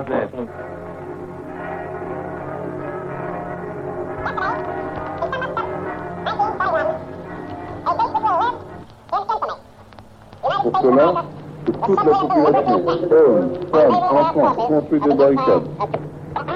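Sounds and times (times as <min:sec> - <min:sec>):
speech: 0:00.0 - 0:00.9, 0:10.7 - 0:16.1
neighbourhood church bells ringing a peal: 0:00.0 - 0:16.5
brief bursts of voices: 0:04.2 - 0:16.5.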